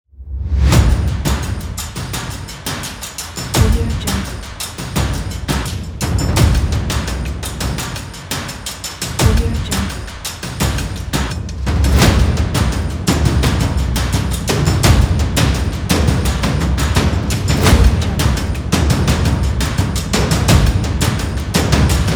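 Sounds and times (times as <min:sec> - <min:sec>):
energetic drum beat: 0:00.7 - 0:22.1.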